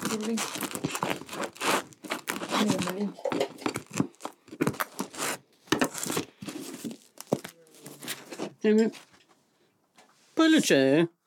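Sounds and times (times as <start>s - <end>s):
knife cutting through a loaf of bread: 0.0s - 8.5s
speech: 0.2s - 0.5s, 8.6s - 9.1s, 10.4s - 11.2s.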